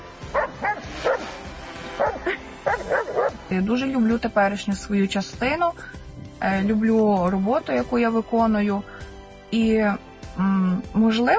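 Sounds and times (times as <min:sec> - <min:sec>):
dog barking: 0:00.4 - 0:01.2, 0:02.0 - 0:03.4
speech: 0:03.5 - 0:11.3.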